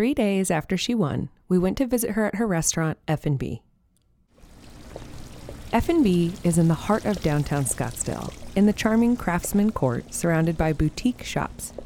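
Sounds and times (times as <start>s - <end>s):
speech: 0.0s - 3.7s, 5.7s - 11.8s
outdoor fountain water bubbling and splashing: 4.4s - 11.8s.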